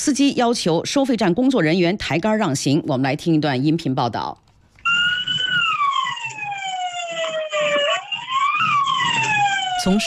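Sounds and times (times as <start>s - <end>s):
speech: 0.0s - 4.4s, 9.8s - 10.0s
fire engine siren wailing at a highway toll booth: 4.8s - 10.0s.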